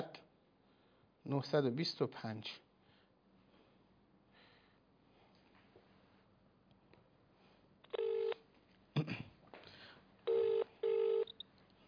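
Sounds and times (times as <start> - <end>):
low noise: 0.0 - 11.8
speech: 1.3 - 2.7
telephone tones while calling a number: 7.9 - 8.4, 10.3 - 11.4.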